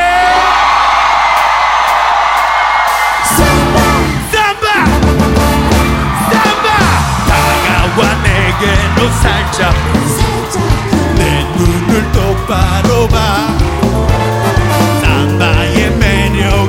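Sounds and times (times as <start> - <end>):
crowd cheering and yelling: 0.0 - 16.6
Korean pop song with vocals: 3.0 - 4.9, 6.1 - 16.6
speech: 8.6 - 9.9.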